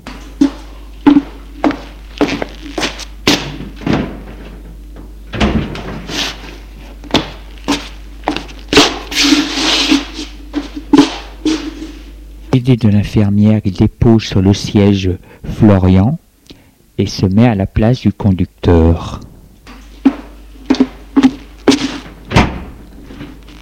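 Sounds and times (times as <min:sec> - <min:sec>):
footsteps: 0:00.0 - 0:12.2, 0:19.2 - 0:23.6
steady low hum: 0:00.0 - 0:23.6
speech: 0:12.7 - 0:16.2, 0:17.0 - 0:19.3.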